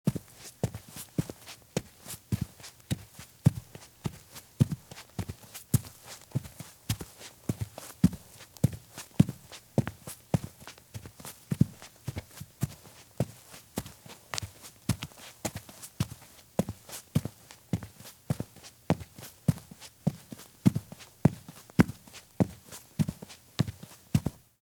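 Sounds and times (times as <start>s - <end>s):
women's heavy high heel shoes walking at fast pace on grass: 0.1s - 24.4s.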